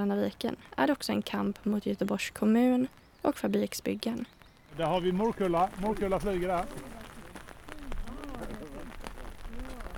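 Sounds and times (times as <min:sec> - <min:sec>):
speech: 0:00.0 - 0:07.0
raindrops pattering on a nearby surface: 0:01.0 - 0:09.9
heavy rain pouring down: 0:04.6 - 0:09.9
faint voice murmuring: 0:06.1 - 0:09.9.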